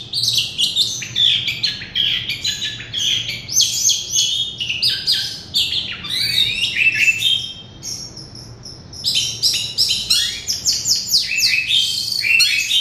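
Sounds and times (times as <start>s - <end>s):
Oriental magpie-robin singing: 0.0s - 12.8s.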